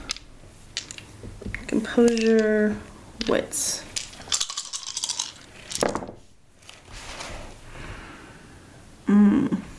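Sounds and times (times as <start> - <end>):
dice clattering across a hard surface: 0.0 - 6.2
speech: 1.8 - 3.9.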